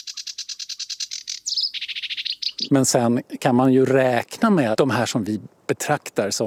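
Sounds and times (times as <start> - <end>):
sedge warbler singing in reeds: 0.0 - 3.1
speech: 2.6 - 6.4.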